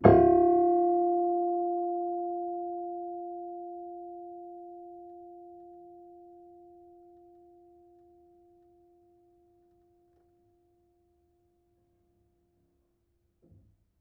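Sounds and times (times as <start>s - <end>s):
low piano harmonics: 0.0s - 10.2s.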